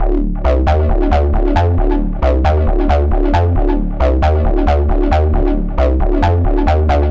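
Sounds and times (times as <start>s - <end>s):
techno acid loop: 0.0s - 7.0s.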